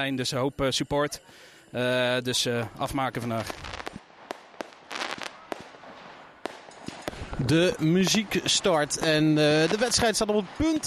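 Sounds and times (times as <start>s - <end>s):
speech: 0.0s - 3.8s, 7.4s - 10.8s
fireworks banging at a sports park: 3.2s - 10.8s.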